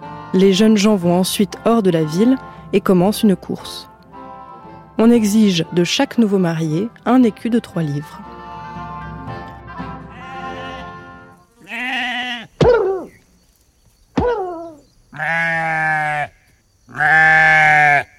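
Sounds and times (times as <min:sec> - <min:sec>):
speech: 0:00.3 - 0:03.9, 0:05.0 - 0:08.3
sheep bleating: 0:10.1 - 0:12.6, 0:15.2 - 0:18.1.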